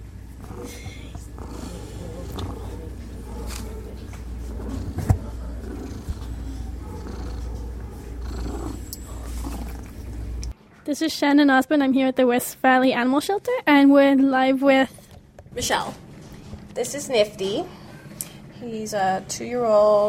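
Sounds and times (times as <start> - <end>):
black cat purring: 0.4 - 10.5
speech: 10.9 - 15.0, 15.6 - 16.0, 16.8 - 17.8, 18.6 - 20.0.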